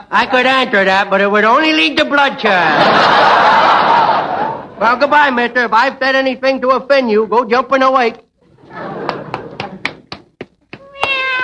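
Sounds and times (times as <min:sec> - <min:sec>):
speech: 0:00.1 - 0:03.8, 0:04.8 - 0:08.2
laughter: 0:02.4 - 0:05.1, 0:08.4 - 0:10.1
sharp rhythmic taps: 0:09.0 - 0:11.3
cat meowing: 0:10.8 - 0:11.4.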